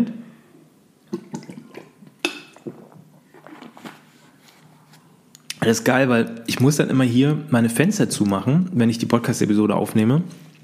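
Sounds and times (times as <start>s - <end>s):
person gulping and swallowing water from a glass: 1.0s - 4.1s
water sloshing in a glass: 1.1s - 4.1s
speech: 5.6s - 10.5s.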